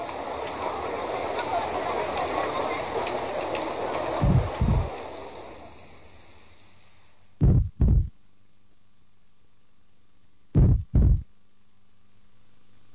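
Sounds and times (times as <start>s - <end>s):
steady rushing wash: 0.0s - 6.5s
deep heartbeat sound effect thudding: 4.2s - 4.9s, 7.4s - 8.1s, 10.6s - 11.3s.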